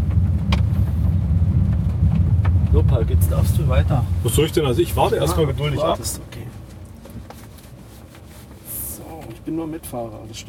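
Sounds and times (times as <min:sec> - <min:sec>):
road rumble: 0:00.0 - 0:10.4
van engine hum while driving off: 0:00.0 - 0:10.4
speech: 0:03.0 - 0:06.4, 0:09.5 - 0:10.4.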